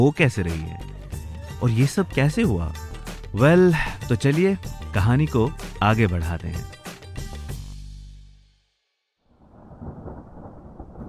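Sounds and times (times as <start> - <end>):
speech: 0.0 - 1.0, 1.6 - 6.8
loud thunderclap cracking and rumbling: 9.4 - 11.0
strong gusting wind on a rainy night: 9.4 - 11.0.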